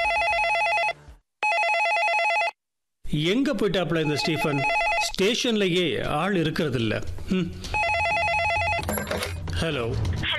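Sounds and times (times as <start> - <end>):
telephone ringing at a police station: 0.0 - 2.6, 4.0 - 5.2, 7.7 - 9.4
speech: 3.1 - 7.8, 9.6 - 10.2.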